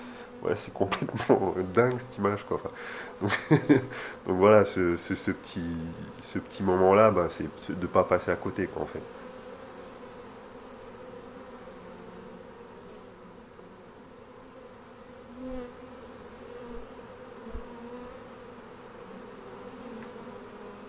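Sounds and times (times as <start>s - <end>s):
honeybees buzzing around a hive: 0.0s - 20.8s
speech: 0.4s - 9.2s
laughter: 0.8s - 4.2s.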